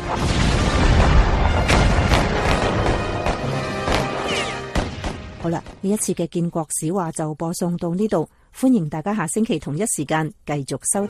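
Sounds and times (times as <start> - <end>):
heavy cannon blasts from gunboats across a harbor signalling battle start: 0.0 - 5.9
sharp cracking impacts: 0.0 - 5.9
speech: 0.1 - 0.5, 5.4 - 11.0.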